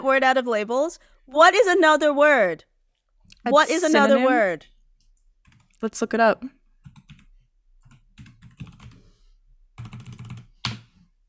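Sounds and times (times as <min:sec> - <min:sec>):
speech: 0:00.0 - 0:02.7, 0:03.4 - 0:04.7, 0:05.8 - 0:06.6
mechanical keyboard typing: 0:05.4 - 0:05.7, 0:06.8 - 0:09.0, 0:09.8 - 0:10.8.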